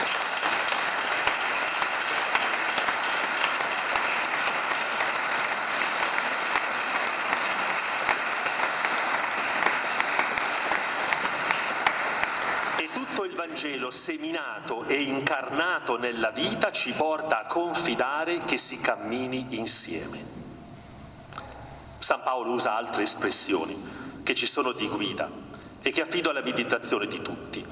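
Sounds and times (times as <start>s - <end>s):
Christian audience applauding a priest: 0.0s - 12.9s
speech: 13.6s - 20.4s, 22.4s - 27.7s.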